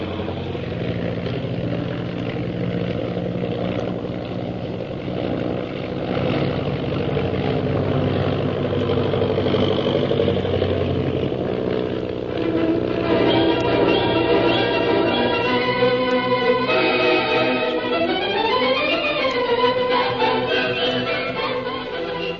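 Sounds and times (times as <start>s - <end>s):
propeller plane engine droning in flight: 0.0s - 22.3s.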